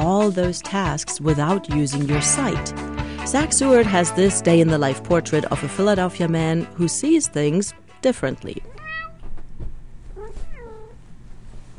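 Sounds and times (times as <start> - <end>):
speech: 0.3 - 8.8
low steady room hum: 7.8 - 11.7
cat meowing for food: 8.7 - 9.3, 10.2 - 11.0.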